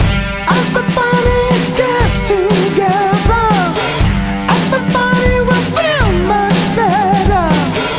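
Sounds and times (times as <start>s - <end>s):
blues rock game music: 0.0s - 7.9s.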